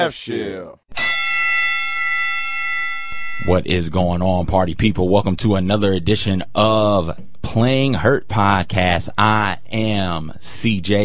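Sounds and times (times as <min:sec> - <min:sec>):
speech: 0:00.0 - 0:01.0, 0:03.4 - 0:11.0
boxing ring bell clang: 0:01.0 - 0:03.5.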